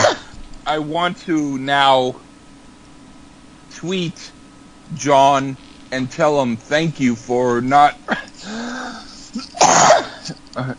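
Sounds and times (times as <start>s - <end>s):
person coughing harshly: 0.0s - 0.3s, 8.1s - 10.7s
speech: 0.7s - 2.2s, 3.8s - 8.6s, 9.3s - 10.7s
breathy voiced sound: 8.2s - 9.6s.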